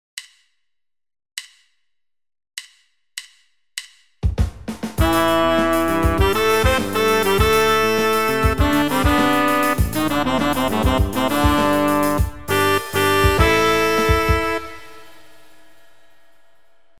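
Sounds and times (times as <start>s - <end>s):
horn: 5.0s - 15.8s.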